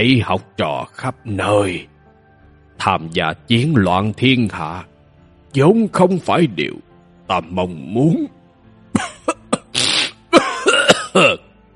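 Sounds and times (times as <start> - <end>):
speech: 0.0 - 1.9, 2.8 - 4.9, 5.5 - 8.4, 11.1 - 11.4
repeated dry coughing: 9.0 - 11.5.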